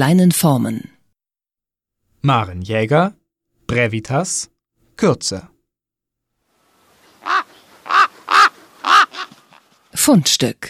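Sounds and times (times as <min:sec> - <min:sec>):
speech: 0:00.0 - 0:00.9, 0:02.2 - 0:05.6, 0:10.0 - 0:10.6
raven cawing: 0:07.0 - 0:09.7.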